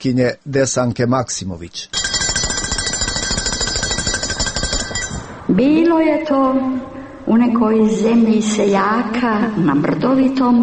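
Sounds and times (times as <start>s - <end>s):
speech: 0.0s - 2.0s, 5.5s - 10.6s
school bell ringing at an autumn memorial ceremony: 1.9s - 5.4s.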